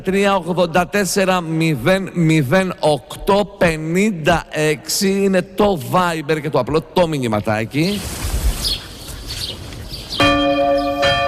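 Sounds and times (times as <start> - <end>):
speech: 0.0 - 8.8
soft bird chirps: 8.6 - 11.0
bell ringing with a rich tone: 10.2 - 11.2.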